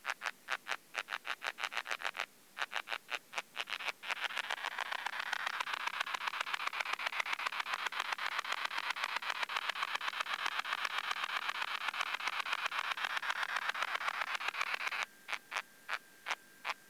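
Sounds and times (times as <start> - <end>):
Poecilimon fussii heard through a bat detector at 40 kHz: 0.1 - 16.8.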